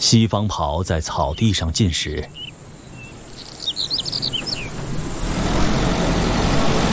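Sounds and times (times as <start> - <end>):
speech: 0.0 - 2.5
birds chirping on a sunny breezy meadow: 0.0 - 6.9
soft outdoor background on a sunny breezy meadow: 0.0 - 6.9
low mower engine rumbling as the meadow is mowed: 2.1 - 6.9.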